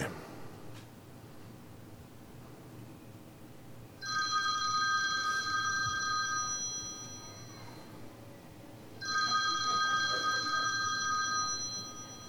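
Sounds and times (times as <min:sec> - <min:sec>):
hotel room telephone ringing with electronic trilling: 0:04.0 - 0:07.8, 0:09.0 - 0:12.2.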